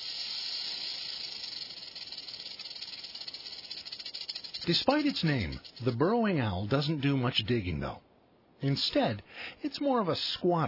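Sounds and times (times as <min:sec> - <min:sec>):
rattlesnake warning rattle: 0:00.0 - 0:06.1
speech: 0:04.6 - 0:10.6.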